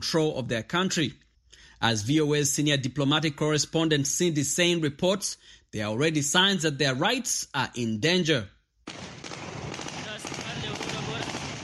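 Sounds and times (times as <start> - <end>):
speech: 0.0 - 1.2, 1.8 - 9.0
celebratory gunfire bursts outdoors: 8.9 - 11.6.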